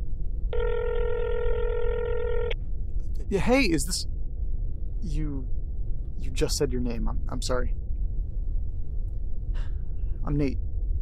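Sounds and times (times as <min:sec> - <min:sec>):
low rumble: 0:00.0 - 0:10.9
electronic ringback tone from an outgoing phone call: 0:00.6 - 0:02.6
speech: 0:03.3 - 0:04.1, 0:05.0 - 0:05.6, 0:06.2 - 0:07.8, 0:10.3 - 0:10.6.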